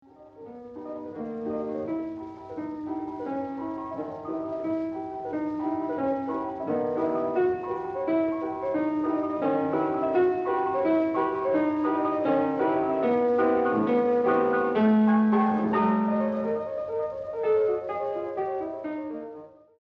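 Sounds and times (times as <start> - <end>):
restored piano recording from a damaged 78 record: 0.0 - 19.8.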